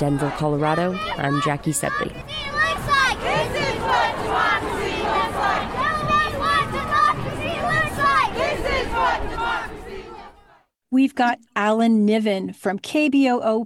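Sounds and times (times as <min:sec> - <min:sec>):
speech: 0:00.0 - 0:02.6, 0:11.0 - 0:13.6
continuous outdoor babble: 0:00.0 - 0:10.6
protest crowd chanting in unison: 0:00.0 - 0:10.7.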